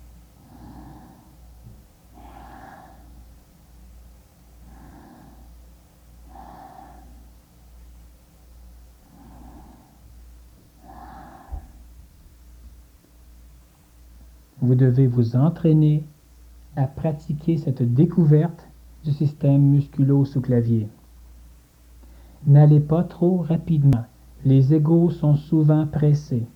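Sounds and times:
slow inhales and exhales during a breathing exercise: 0:00.0 - 0:14.6, 0:21.4 - 0:22.5
steady low hum: 0:00.0 - 0:26.5
speech: 0:14.6 - 0:16.1, 0:16.8 - 0:21.0, 0:22.4 - 0:26.5.

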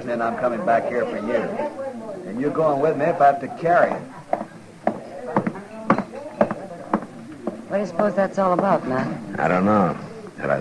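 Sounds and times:
speech: 0:00.1 - 0:04.2, 0:07.7 - 0:10.6
horse hooves clip-clopping at a walking pace: 0:03.8 - 0:08.9.

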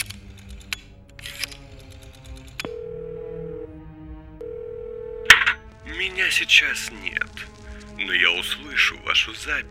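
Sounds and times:
coin dropping into a payphone slot: 0:05.3 - 0:05.6
speech: 0:06.0 - 0:09.6.

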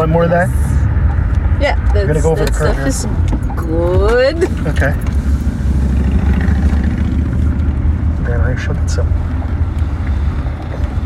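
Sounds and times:
speech: 0:00.0 - 0:00.7, 0:01.6 - 0:05.2, 0:08.3 - 0:09.3
big trucks passing by, rumbling: 0:03.1 - 0:11.0.

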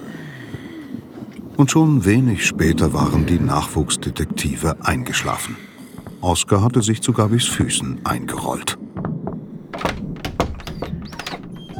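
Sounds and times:
speech: 0:01.6 - 0:08.8
storage room door being rattled: 0:09.5 - 0:11.7.

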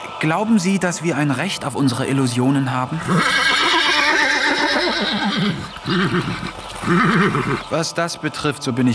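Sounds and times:
speech: 0:00.2 - 0:03.7, 0:04.8 - 0:08.9
person imitating a horse neighing: 0:03.0 - 0:07.7.

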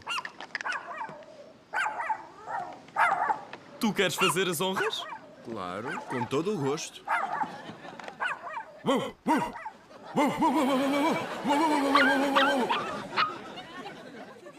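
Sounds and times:
large dog barking played over loudspeakers: 0:00.0 - 0:06.4, 0:07.0 - 0:07.6, 0:09.4 - 0:09.8, 0:11.3 - 0:13.4
speech: 0:03.8 - 0:07.2, 0:08.8 - 0:13.0
laughter: 0:06.1 - 0:14.5.

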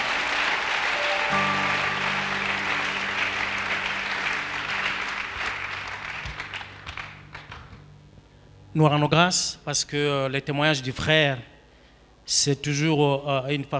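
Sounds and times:
congregation clapping at a church service: 0:00.0 - 0:07.9
speech: 0:08.8 - 0:11.5, 0:12.3 - 0:13.7.

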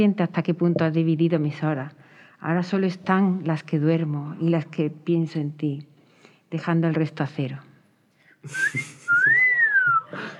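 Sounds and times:
speech: 0:00.0 - 0:05.9, 0:06.5 - 0:07.7, 0:08.4 - 0:09.4
attempted whistling through a face mask: 0:08.6 - 0:10.1.

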